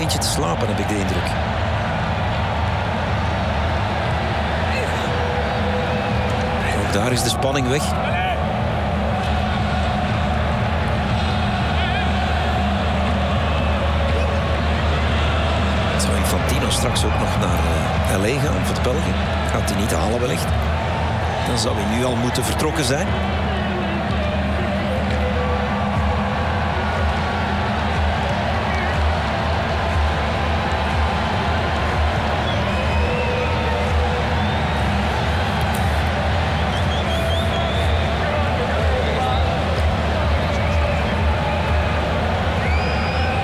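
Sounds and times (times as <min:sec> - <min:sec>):
large crowd at a football match in an arena roaring: 0:00.0 - 0:43.4
speech: 0:00.1 - 0:01.7, 0:06.9 - 0:08.2, 0:17.0 - 0:20.8, 0:21.5 - 0:23.5.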